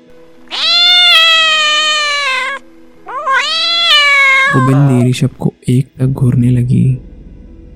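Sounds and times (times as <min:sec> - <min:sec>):
angry cat yowling and growling behind an iron gate: 0:00.5 - 0:05.2
speech: 0:04.5 - 0:07.1.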